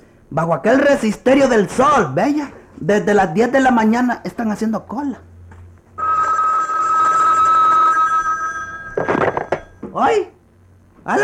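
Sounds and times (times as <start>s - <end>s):
speech: 0.3s - 5.3s, 10.0s - 10.4s, 11.1s - 11.2s
telephone bell ringing: 6.0s - 9.8s.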